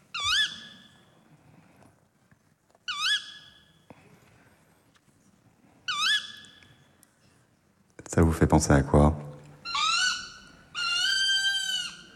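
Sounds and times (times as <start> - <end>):
tawny owl calling: 0.1 - 1.0, 2.9 - 3.8, 5.9 - 6.8, 9.6 - 12.1
speech: 8.2 - 9.2.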